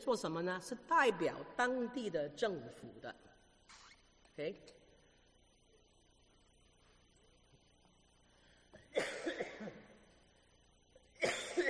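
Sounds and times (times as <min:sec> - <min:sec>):
speech: 0:00.0 - 0:03.3, 0:04.4 - 0:04.8
man coughing during a lecture: 0:08.8 - 0:10.0, 0:11.2 - 0:11.6.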